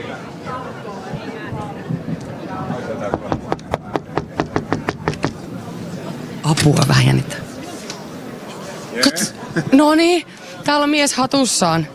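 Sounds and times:
low murmur of voices: 0:00.0 - 0:11.9
knocking on a heavy red door to a jury room: 0:03.1 - 0:05.4
speech: 0:06.5 - 0:07.5, 0:09.0 - 0:11.9.

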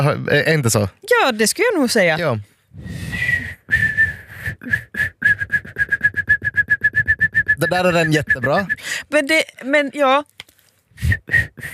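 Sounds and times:
speech: 0:00.0 - 0:03.8, 0:07.6 - 0:10.4, 0:11.1 - 0:11.7
person attempting a breathy wavering whistle: 0:03.0 - 0:08.9, 0:11.0 - 0:11.7.

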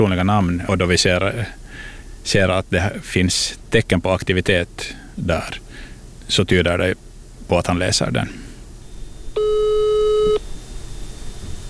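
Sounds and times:
speech: 0:00.0 - 0:01.6, 0:02.2 - 0:08.4
faint hiss: 0:00.0 - 0:11.6
telephone signal tone: 0:09.4 - 0:10.4.

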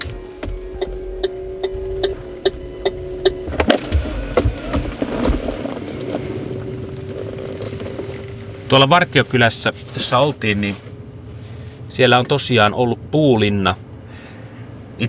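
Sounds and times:
regular ticking clicks: 0:00.0 - 0:08.4
car engine humming as the car drives off toward Sipoo: 0:00.0 - 0:15.0
speech: 0:08.7 - 0:10.9, 0:11.9 - 0:13.8.

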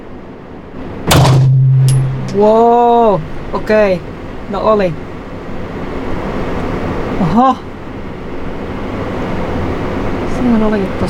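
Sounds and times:
steady low ringing hum: 0:00.0 - 0:11.0
single loud gunshot from a firearm: 0:01.1 - 0:01.9
speech: 0:02.3 - 0:05.1, 0:07.2 - 0:07.7, 0:10.4 - 0:11.0.

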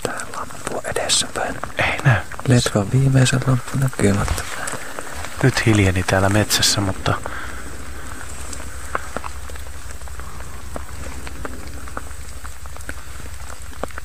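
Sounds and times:
steady rain falling in a dark forest at night: 0:00.0 - 0:14.0
speech: 0:01.1 - 0:04.6, 0:05.4 - 0:07.4
low rumble: 0:02.2 - 0:14.0.

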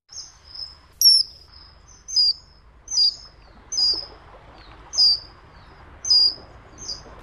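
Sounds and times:
common kingfisher high thin piercing whistling calls: 0:00.2 - 0:04.1, 0:04.9 - 0:05.4, 0:06.0 - 0:07.0.

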